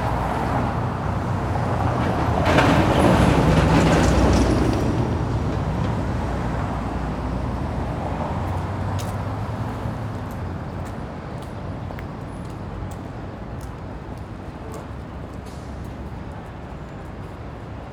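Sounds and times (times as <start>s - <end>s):
deep rumble of downtown street traffic: 0.0s - 17.9s.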